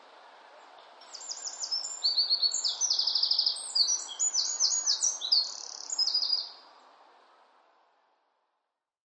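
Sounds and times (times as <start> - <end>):
faint hiss: 0.0 - 8.8
bird singing trills and chirps: 1.0 - 6.6.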